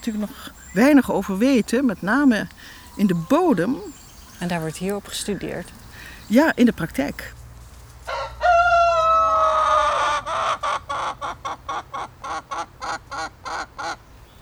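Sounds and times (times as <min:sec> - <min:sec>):
chickens clucking at a self-harvest vegetable garden: 0:00.0 - 0:07.3, 0:09.0 - 0:14.3
speech: 0:00.0 - 0:07.4
rooster crowing: 0:08.0 - 0:10.7.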